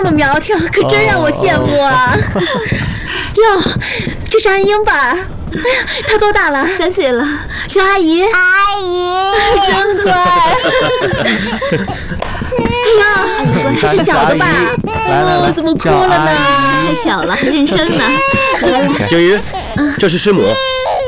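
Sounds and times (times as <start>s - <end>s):
laughter: 0.0s - 3.1s, 9.4s - 20.6s
adults talking: 0.0s - 8.4s, 9.3s - 20.7s
very young child crying, upset at meeting strangers: 8.4s - 21.0s.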